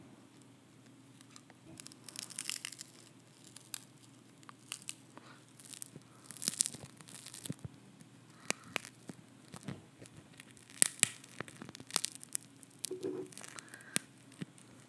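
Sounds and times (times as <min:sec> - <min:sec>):
low steady hum: 0:00.0 - 0:14.8
thin glass screen cracking and crunching: 0:01.3 - 0:03.9, 0:05.6 - 0:07.6, 0:10.3 - 0:14.6.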